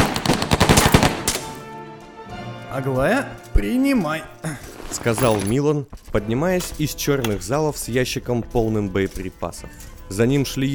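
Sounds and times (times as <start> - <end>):
automatic gunfire from a sudden ambush: 0.0 - 1.5
speech: 2.8 - 10.7.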